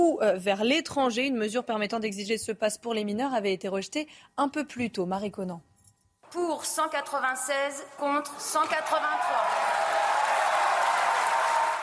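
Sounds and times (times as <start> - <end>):
speech: 0.0 - 5.7, 6.3 - 9.8
large crowd of deputies applauding in a parliament chamber: 8.0 - 11.8.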